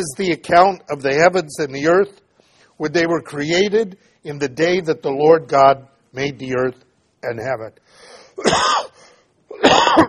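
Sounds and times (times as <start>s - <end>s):
speech: 0.0s - 2.2s, 2.8s - 8.9s
person coughing and clearing throat: 8.4s - 10.0s.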